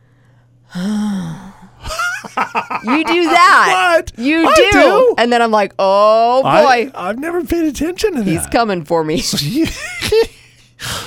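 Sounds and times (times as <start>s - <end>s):
speech: 0.7s - 1.1s, 2.8s - 11.0s
voice mimicking heavy breathing with breathy exhale and sharp gasp: 0.7s - 1.8s, 8.2s - 8.6s, 10.8s - 11.0s
laughter: 1.8s - 3.9s, 9.2s - 10.7s.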